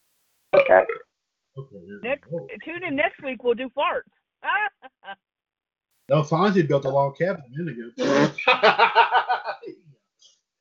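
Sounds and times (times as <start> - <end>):
loud voiced burp from a burping contest: 0.6 - 1.0, 7.9 - 8.4
speech: 0.7 - 1.0, 1.6 - 5.2, 6.1 - 9.8
laughter: 6.1 - 9.8.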